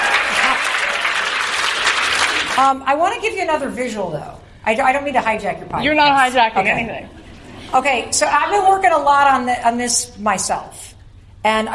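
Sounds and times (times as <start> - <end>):
audience applause: 0.0 - 2.6
speech: 2.6 - 11.7.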